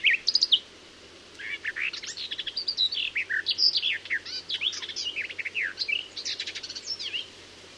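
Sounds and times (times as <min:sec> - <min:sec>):
garden warbler singing: 0:00.0 - 0:00.7, 0:01.4 - 0:07.4.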